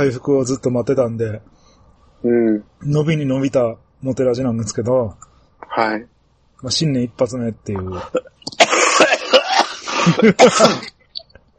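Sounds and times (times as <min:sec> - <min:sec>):
speech: 0:00.0 - 0:01.6, 0:02.2 - 0:08.6, 0:10.0 - 0:11.0
harsh raspy coughing with throaty clearing: 0:07.9 - 0:11.0.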